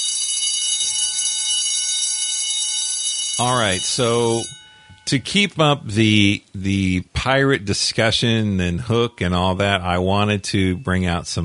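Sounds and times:
bell ringing with bright sustained metallic clangor: 0:00.0 - 0:05.7
speech: 0:03.4 - 0:11.4.

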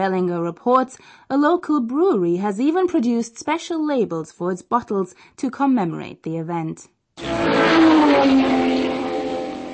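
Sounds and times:
speech: 0:00.0 - 0:09.0
Porsche sports car engine revving: 0:07.2 - 0:09.7.

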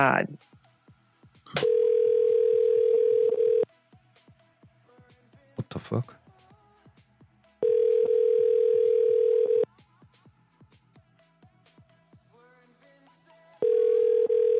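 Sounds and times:
speech: 0:00.0 - 0:00.6, 0:05.7 - 0:06.2
loud steady telephone dial tone: 0:01.5 - 0:03.6, 0:07.6 - 0:09.7, 0:13.6 - 0:14.5.

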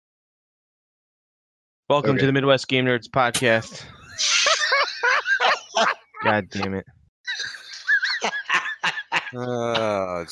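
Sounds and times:
speech: 0:01.9 - 0:04.4, 0:05.8 - 0:07.5, 0:09.3 - 0:10.3
person laughing: 0:03.4 - 0:10.3.

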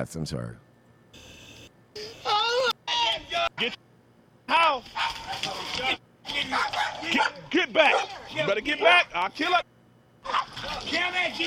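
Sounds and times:
speech: 0:00.0 - 0:01.3, 0:03.6 - 0:03.8, 0:04.5 - 0:09.7, 0:10.8 - 0:11.4
big dog barking and yelping in a played video of police at a property: 0:04.9 - 0:08.6, 0:10.2 - 0:11.4.

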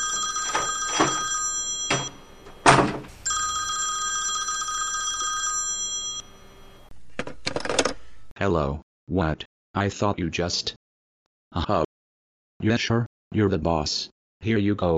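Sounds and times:
old-style telephone bell ringing: 0:00.0 - 0:06.9
speech: 0:08.5 - 0:10.8, 0:11.5 - 0:11.9, 0:12.6 - 0:14.9.

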